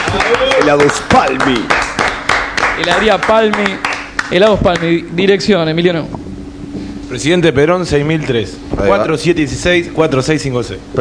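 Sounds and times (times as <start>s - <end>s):
overlapping voices: 0.0s - 4.8s
clapping and applause: 0.0s - 4.9s
speech: 0.1s - 1.9s, 2.8s - 6.2s, 7.1s - 10.9s.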